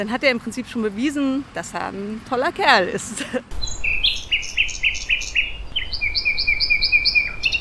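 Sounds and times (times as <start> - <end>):
speech: 0.0 - 3.9
low rumble of traffic: 0.0 - 7.5
nightingale singing: 3.5 - 7.5.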